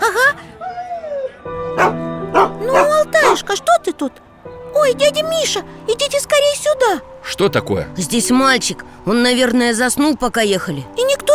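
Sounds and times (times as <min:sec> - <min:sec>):
dog barking and yipping beside a sleigh: 0:01.7 - 0:03.5
speech: 0:03.8 - 0:11.3.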